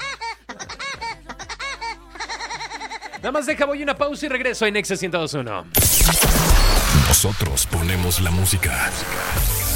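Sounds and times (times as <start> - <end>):
cartoon woodpecker laugh sound effect: 0.0 - 3.2
speech: 3.2 - 9.6.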